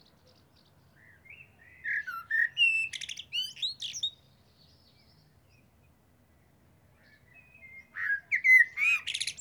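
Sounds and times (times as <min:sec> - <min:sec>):
common blackbird Turdus merula singing: 0:00.2 - 0:04.2, 0:07.0 - 0:09.3.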